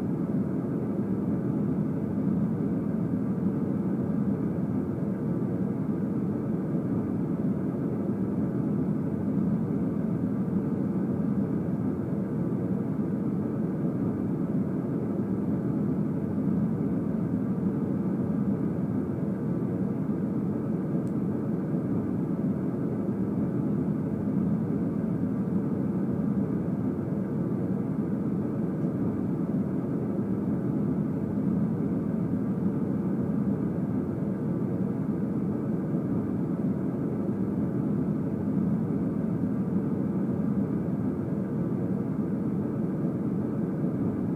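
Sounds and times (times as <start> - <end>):
airplane cabin noise: 0.0 - 44.3.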